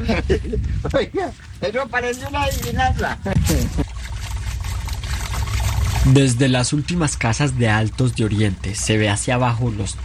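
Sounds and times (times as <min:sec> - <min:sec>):
speech: 0:00.1 - 0:03.8, 0:06.0 - 0:10.0
water pouring from a water tank: 0:02.2 - 0:10.0.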